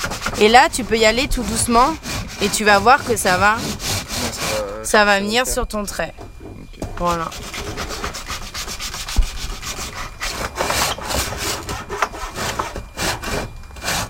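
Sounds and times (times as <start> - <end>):
hand saw cutting through wood along a marked line: 0.0 - 5.5, 7.0 - 14.0
speech: 0.4 - 3.8, 4.8 - 6.2, 7.0 - 7.5
brief knock: 9.0 - 9.7.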